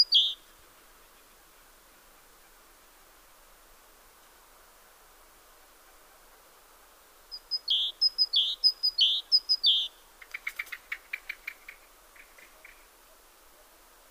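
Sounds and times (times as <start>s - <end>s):
great tit Parus major singing high-low phrases: 0.0s - 0.4s, 7.3s - 12.8s.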